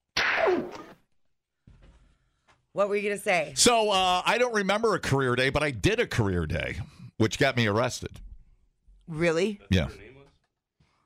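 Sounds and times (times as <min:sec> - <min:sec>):
whip-like slap sound effect with swishing tail: 0:00.1 - 0:01.0
speech: 0:02.8 - 0:08.2, 0:09.1 - 0:10.1.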